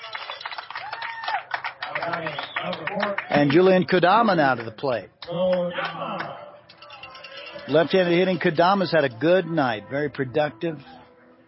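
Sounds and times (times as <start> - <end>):
ballpark crowd cheering a base hit: 0.0 - 8.4
speech: 2.0 - 6.2, 7.7 - 10.9.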